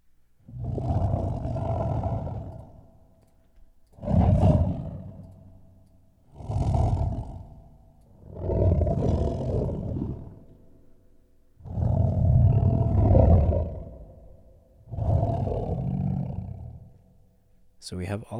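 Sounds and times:
deep layered creature roars and growls: 0.5s - 2.8s, 4.0s - 5.3s, 6.3s - 10.4s, 11.6s - 14.2s, 14.9s - 16.9s
speech: 17.9s - 18.3s.

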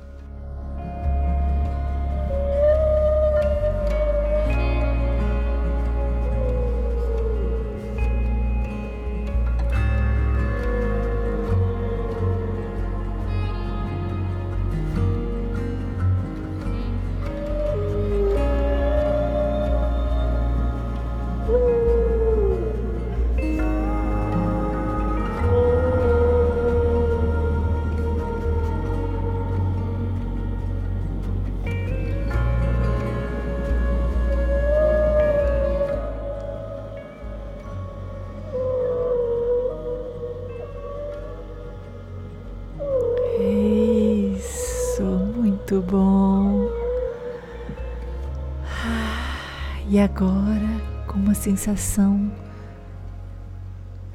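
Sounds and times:
deep steady underwater rumble: 0.0s - 54.1s
whale song: 0.0s - 54.1s
speech: 51.4s - 52.4s.

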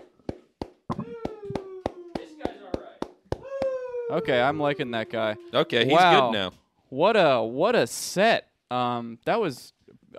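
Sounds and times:
steady evenly spaced hand claps: 0.0s - 3.8s
long wavering vocal cry: 0.9s - 2.6s, 3.4s - 6.5s
speech: 4.1s - 10.1s.

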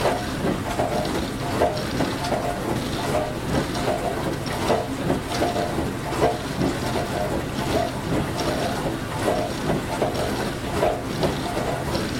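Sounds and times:
dishwasher running: 0.0s - 12.1s.

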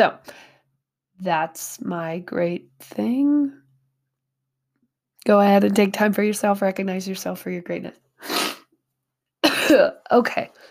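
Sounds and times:
speech: 0.0s - 0.4s, 1.2s - 3.6s, 5.2s - 8.5s, 9.7s - 10.6s
harsh phlegmy coughing and throat clearing: 9.4s - 10.0s.

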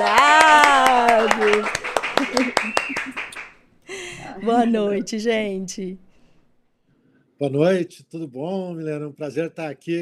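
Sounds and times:
rhythmic audience applause for the guests: 0.0s - 5.1s
laughter: 0.0s - 5.3s
speech: 4.5s - 6.0s, 7.4s - 10.0s.

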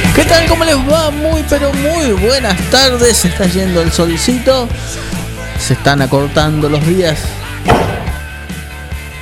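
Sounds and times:
speech: 0.2s - 8.0s
heavy thud: 7.7s - 8.3s.

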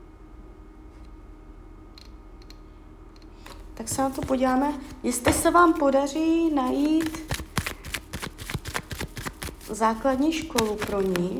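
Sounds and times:
tarot cards being shuffled: 3.4s - 11.3s
speech: 3.8s - 7.3s, 9.7s - 11.3s.

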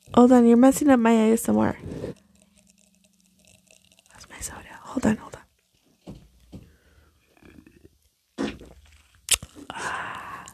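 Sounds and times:
speech: 0.1s - 2.1s, 5.0s - 5.4s
loud raspy fart with one butt cheek lifted: 8.4s - 8.9s.

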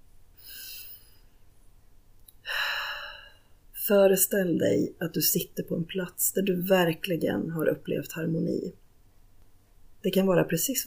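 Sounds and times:
deep breath during a guided relaxation exercise: 0.4s - 1.4s, 2.4s - 3.6s
speech: 3.9s - 8.8s, 10.0s - 10.8s.

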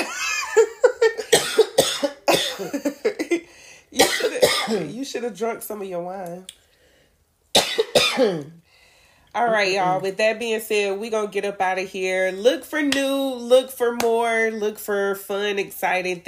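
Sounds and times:
harsh coughs: 1.0s - 4.9s, 7.5s - 8.6s
speech: 5.1s - 6.6s, 8.2s - 8.6s, 9.4s - 16.2s.

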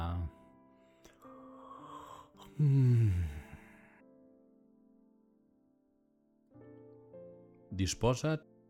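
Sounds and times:
drawn-out voiced open-mouthed yawn: 1.4s - 3.9s
speech: 2.6s - 3.0s, 7.8s - 8.5s.

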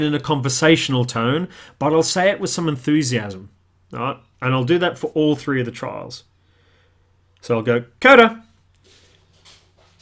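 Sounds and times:
speech: 0.0s - 6.3s, 7.4s - 8.4s
female dog's soft footsteps walking into a studio: 8.5s - 10.0s.

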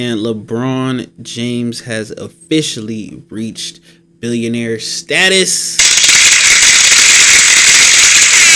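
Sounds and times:
speech: 0.0s - 5.9s
rapid gunshot sound effects: 5.8s - 8.4s.

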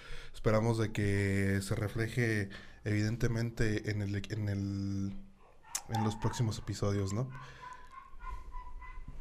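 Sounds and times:
speech: 0.4s - 5.3s, 5.9s - 7.6s
neighbor's dog whining: 5.4s - 6.6s, 7.3s - 9.2s.

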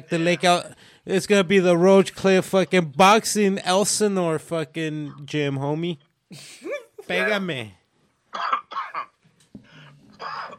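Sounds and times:
speech: 0.0s - 7.8s
person coughing: 8.4s - 9.2s, 10.1s - 10.5s
rough throaty hack and throat clearing: 10.1s - 10.5s.

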